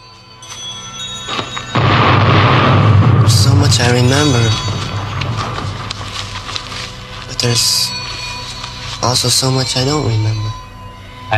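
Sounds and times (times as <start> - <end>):
sharp bangs: 0.5 - 11.3
construction explosion with a heavy roaring boom: 1.7 - 7.6
speech: 3.8 - 4.8, 7.4 - 8.0, 9.0 - 10.4.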